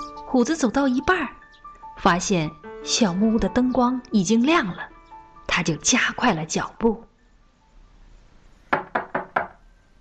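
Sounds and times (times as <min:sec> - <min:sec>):
speech: 0:00.3 - 0:01.4, 0:02.0 - 0:04.9, 0:05.5 - 0:07.1
knocking on the wooden door of a small cabin on a snowy mountainside: 0:08.7 - 0:09.6.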